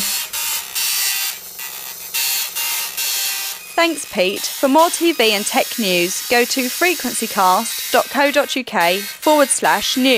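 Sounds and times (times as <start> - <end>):
dot matrix printer playing a song with buzzing print-head: 0.0 - 10.1
speech: 3.8 - 10.1.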